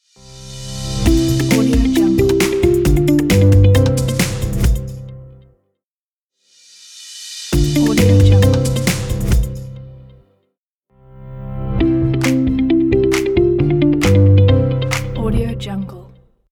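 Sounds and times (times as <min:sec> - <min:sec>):
corporate upbeat intro logo music: 0:00.1 - 0:05.2, 0:07.2 - 0:09.9, 0:11.2 - 0:15.7.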